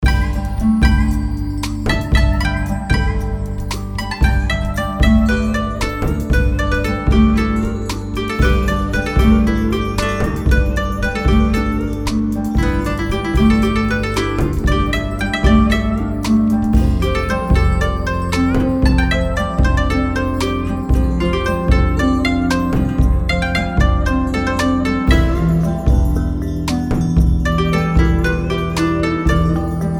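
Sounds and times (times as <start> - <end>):
background music theme mix: 0.0 - 29.9.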